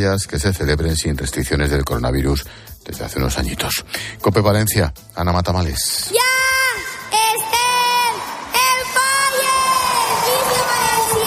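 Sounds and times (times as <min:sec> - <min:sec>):
speech: 0:00.0 - 0:06.4
high-pitched crowd shouts and whoops at the Fallas festival: 0:06.1 - 0:11.2
large crowd in Valencia roaring a battle cry at the Fallas festival opening: 0:06.1 - 0:11.2.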